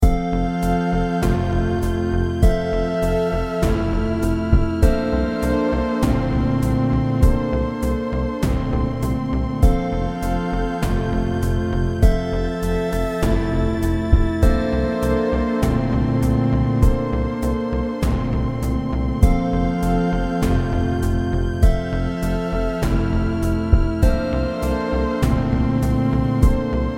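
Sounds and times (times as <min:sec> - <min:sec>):
drums: 0:00.0 - 0:26.8.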